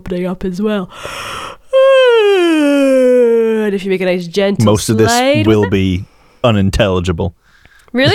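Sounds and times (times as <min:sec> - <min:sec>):
speech: 0:00.0 - 0:01.6, 0:02.6 - 0:08.1
person yawning with a downward voiced sigh: 0:01.4 - 0:03.8.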